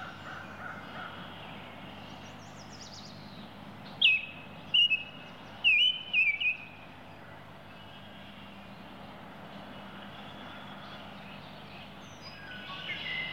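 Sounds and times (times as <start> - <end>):
low background hum: 0.0 - 13.3
Baltimore oriole calling with bright slurred whistles: 4.0 - 6.8.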